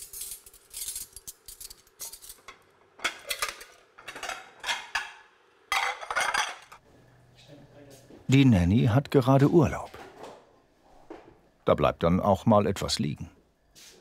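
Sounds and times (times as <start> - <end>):
deep and flat plates clattering while setting a table: 2.0 - 6.8
speech: 8.3 - 9.9, 11.7 - 13.4.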